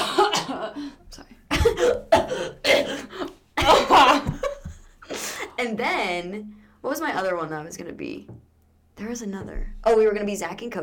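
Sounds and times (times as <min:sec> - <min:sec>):
person coughing in harsh bursts: 0:00.0 - 0:00.9, 0:01.5 - 0:05.6
speech: 0:05.8 - 0:10.8.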